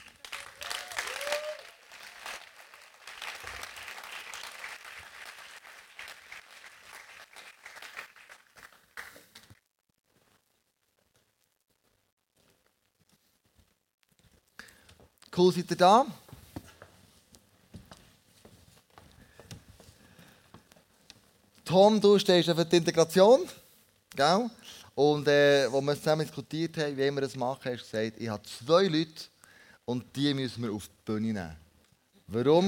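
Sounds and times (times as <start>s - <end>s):
audience applause with dense crowd of hands clapping: 0.0s - 9.5s
speech: 15.4s - 16.2s, 21.7s - 23.6s, 24.2s - 29.3s, 29.9s - 31.6s, 32.3s - 32.6s.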